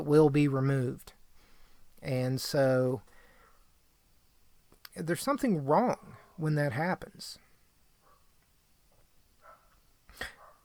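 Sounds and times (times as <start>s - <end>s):
speech: 0.0s - 1.2s, 2.0s - 3.1s, 5.0s - 7.4s
dog barking: 9.4s - 10.6s.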